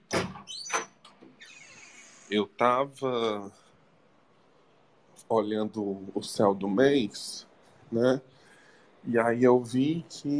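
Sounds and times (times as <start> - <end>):
door opening with scraping clattering knocks: 0.0 - 2.3
thin high squeak from the hinge or latch: 0.5 - 2.3
speech: 2.3 - 3.6, 5.3 - 8.3, 9.0 - 10.3.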